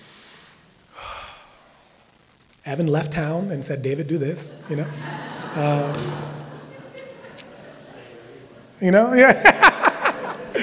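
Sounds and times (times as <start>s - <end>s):
deep breath drawn in: 0.0s - 2.1s
speech: 2.6s - 6.3s, 8.8s - 9.6s
laughter: 2.7s - 10.6s.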